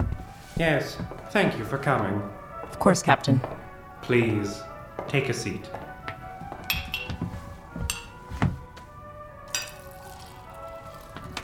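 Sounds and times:
speech: 0.6s - 5.9s
light glassy clinks and knocks: 6.7s - 7.3s, 7.9s - 8.2s, 9.5s - 10.3s
drink being poured into a glass: 9.5s - 11.4s.

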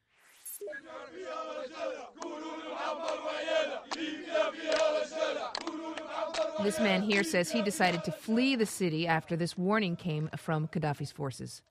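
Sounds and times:
rebel fighters shouting together while regrouping outside Ajdabia: 0.7s - 8.2s
speech: 0.7s - 11.6s.

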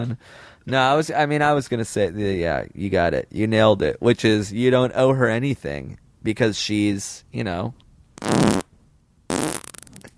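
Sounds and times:
speech: 0.0s - 8.6s
fart with rumbling blast and sputtering pops: 8.2s - 8.7s, 9.3s - 10.1s.

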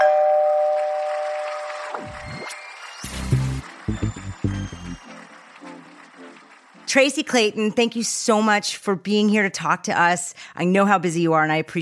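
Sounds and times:
electronic doorbell chime: 0.0s - 1.7s
speech: 7.0s - 11.7s.

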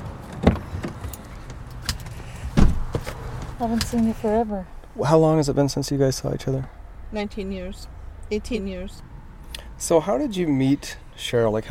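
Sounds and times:
car door and seat thuds as people climb into a car: 0.3s - 1.2s, 1.9s - 4.0s
speech: 3.6s - 9.1s, 9.8s - 11.7s.

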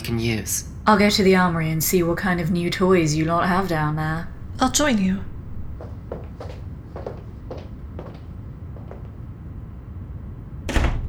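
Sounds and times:
speech: 0.1s - 5.3s
low rumble: 0.8s - 6.4s
door shutting with a loud thud: 1.5s - 6.0s, 10.7s - 11.0s.

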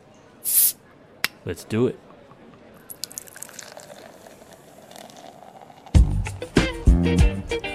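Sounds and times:
bottle opening with a fizzing hiss: 0.4s - 0.8s, 2.9s - 6.8s
speech: 1.4s - 2.1s, 7.1s - 7.5s.

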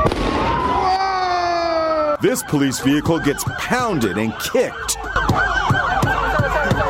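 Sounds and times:
firework thrown at a police patrol car going off with a bang: 0.0s - 0.9s
speech: 2.2s - 5.4s
crowd noise at a street takeover in Texas: 2.2s - 6.8s.

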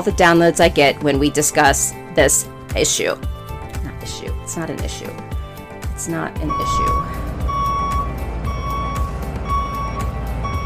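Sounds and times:
speech: 0.0s - 3.4s, 4.0s - 5.3s, 6.0s - 7.2s
low engine rumble: 6.0s - 10.6s
vehicle reversing beeps while parking: 6.5s - 10.6s.

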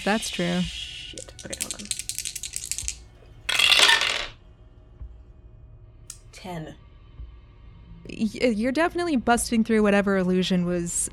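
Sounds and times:
speech: 0.0s - 1.9s, 6.4s - 6.8s, 8.0s - 11.1s
dice rolled for a power check in a tabletop game: 1.2s - 4.4s.

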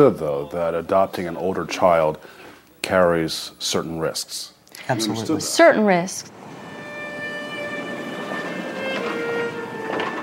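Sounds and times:
speech: 0.0s - 6.4s
train rolling on rails with metallic screech: 6.3s - 10.2s.

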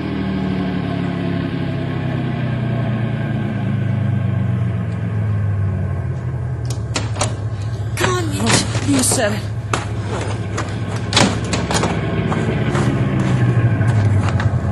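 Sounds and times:
car engine rumbling as the car slows to a halt: 0.0s - 14.7s
sharp clicks and knocks: 6.6s - 12.0s
speech: 9.1s - 9.6s.

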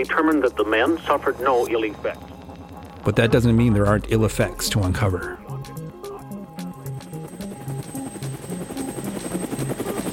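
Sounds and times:
speech: 0.0s - 2.3s, 3.0s - 5.8s
Twin Huey helicopter engine whine: 0.0s - 10.1s
Twin Huey helicopter rotor thumping over ice: 2.2s - 10.1s.

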